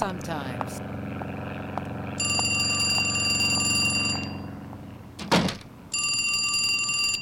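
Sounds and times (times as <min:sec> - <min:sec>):
speech: 0:00.0 - 0:00.9
steady low hum: 0:00.0 - 0:06.0
telephone ringing: 0:02.2 - 0:04.6, 0:05.9 - 0:07.1.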